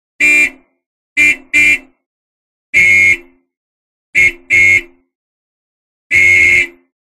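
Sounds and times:
Austin Sixteen car horn: 0:00.2 - 0:02.0, 0:02.7 - 0:03.5, 0:04.1 - 0:05.1, 0:06.1 - 0:07.0.

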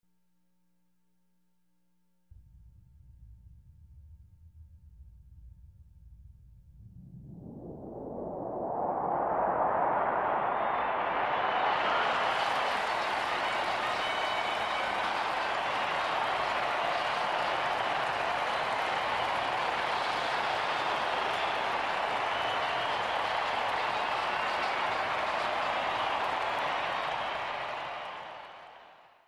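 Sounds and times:
sports arena crowd cheering: 0:08.8 - 0:29.2.

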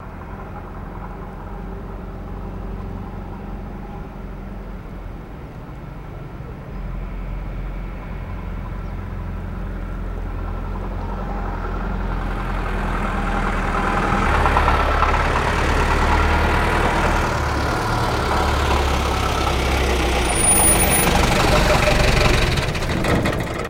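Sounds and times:
English taxi driving: 0:00.0 - 0:23.6.

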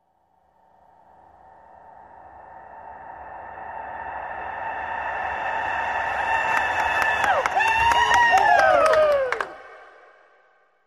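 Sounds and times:
crowd in a sports arena: 0:05.9 - 0:10.0.

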